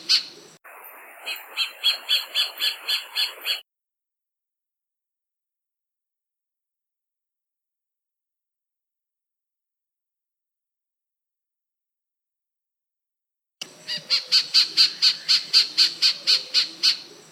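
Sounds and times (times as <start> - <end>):
white-faced robin song in Papua New Guinea: 0.0 - 3.6, 13.6 - 17.3.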